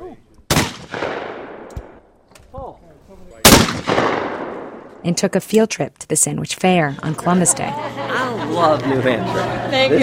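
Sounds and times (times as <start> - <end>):
gunshots fired at a shooting range: 0.5 - 2.0, 3.4 - 5.0
speech: 5.0 - 10.0
laughter: 7.3 - 10.0.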